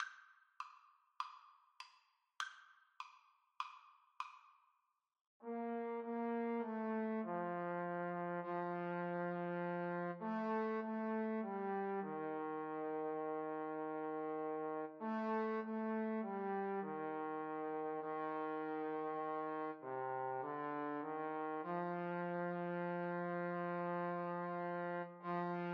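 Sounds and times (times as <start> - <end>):
trombone duet: 5.4 - 25.7.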